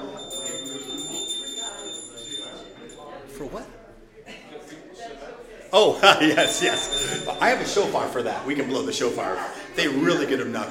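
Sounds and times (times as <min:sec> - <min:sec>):
hand bell ringing: 0:00.0 - 0:03.2, 0:06.1 - 0:08.2
indistinct voices murmuring: 0:00.0 - 0:10.6
speech: 0:03.4 - 0:03.8, 0:05.7 - 0:10.6
laughter: 0:04.2 - 0:05.0, 0:05.8 - 0:10.5.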